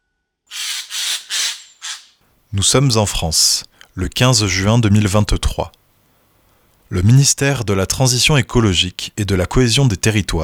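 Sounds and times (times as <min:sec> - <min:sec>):
Eurasian jay harsh rasping screeches: 0:00.5 - 0:02.2
speech: 0:02.5 - 0:05.8, 0:06.9 - 0:10.4.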